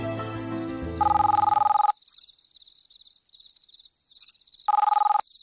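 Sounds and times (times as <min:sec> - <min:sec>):
telephone ringing in sharp electronic bursts: 0:01.0 - 0:01.9, 0:04.7 - 0:05.3.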